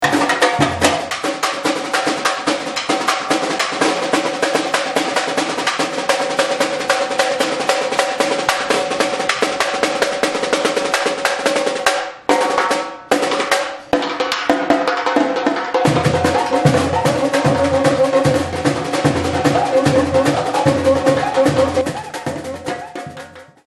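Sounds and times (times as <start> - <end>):
snare drum: 0.0 - 23.6.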